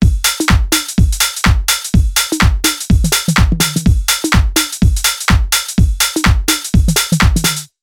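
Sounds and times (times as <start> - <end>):
electronic music at 125 bpm: 0.0 - 7.7.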